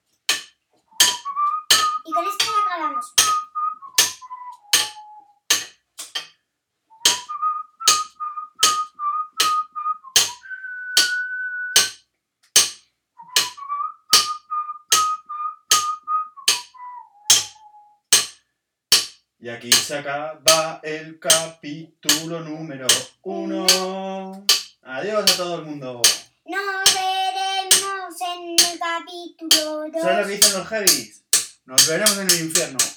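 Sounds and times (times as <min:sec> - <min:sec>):
steady rhythm of sharp taps or knocks: 0:00.3 - 0:06.4, 0:07.0 - 0:10.4, 0:11.0 - 0:32.9
person whistling a simple melody: 0:00.9 - 0:05.5, 0:06.9 - 0:12.0, 0:13.2 - 0:18.1, 0:23.3 - 0:24.0
speech: 0:19.4 - 0:26.2, 0:29.5 - 0:32.9.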